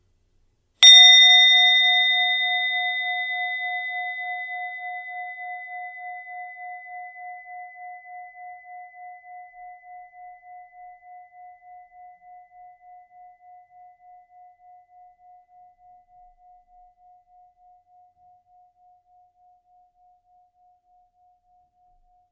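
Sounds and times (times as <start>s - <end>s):
meditation bell ringing: 0.8s - 12.1s.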